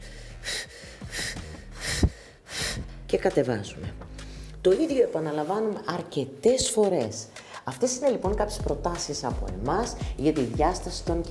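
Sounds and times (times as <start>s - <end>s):
breath exhaled during a yoga-style abdominal exercise: 0.0s - 3.0s
speech: 3.1s - 11.3s.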